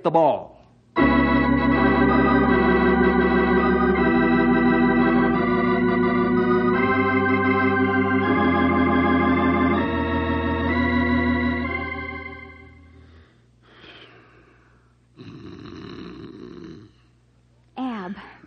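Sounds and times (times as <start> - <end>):
speech: 0.0 - 1.2
droning musical tone: 1.0 - 13.2
man snoring in bed: 15.2 - 16.9.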